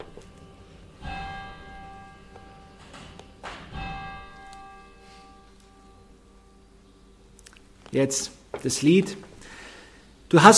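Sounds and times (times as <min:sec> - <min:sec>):
church bell strikes on a Sunday: 0:00.0 - 0:07.3
low hum: 0:00.0 - 0:10.5
speech: 0:07.9 - 0:09.3, 0:10.3 - 0:10.5.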